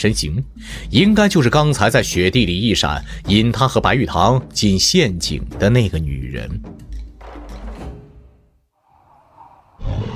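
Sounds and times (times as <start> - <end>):
speech: 0.0 - 7.0
soft airy swell: 8.8 - 10.1
animal roaring with hostility in a snowy setting: 8.9 - 10.1.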